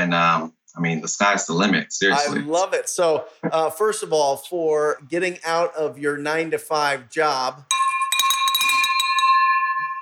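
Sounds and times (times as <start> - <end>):
speech: 0.1 - 7.9
bell ringing inside a building: 7.7 - 10.0
light clattering: 8.2 - 9.2.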